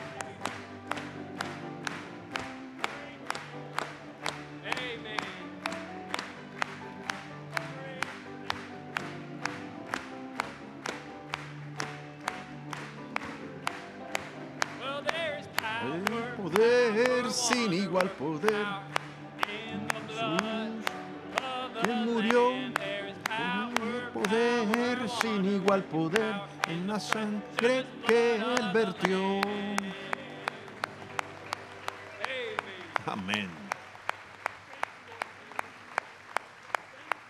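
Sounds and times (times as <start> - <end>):
people singing a Spanish-language hymn with music: 0.0 - 3.7, 4.5 - 9.7, 14.5 - 31.1
audience clapping in time: 0.0 - 37.2
speech: 18.1 - 18.9, 25.8 - 29.3.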